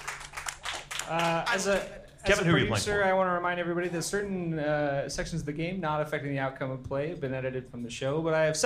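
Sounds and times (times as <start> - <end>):
audience applause: 0.0 - 1.8
speech: 1.1 - 8.6.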